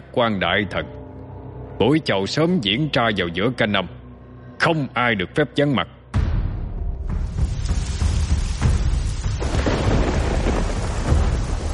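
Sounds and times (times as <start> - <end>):
speech: 0.1 - 1.0, 1.8 - 4.0, 4.6 - 6.0
sudden light rain: 7.1 - 11.7
deep rolling thunder-like rumbles: 7.2 - 11.7.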